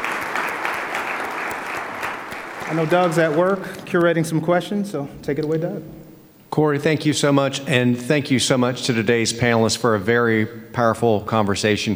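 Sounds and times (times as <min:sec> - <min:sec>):
audience applauding panelists after a panel discussion: 0:00.0 - 0:04.1
speech: 0:02.7 - 0:06.0, 0:06.6 - 0:11.9.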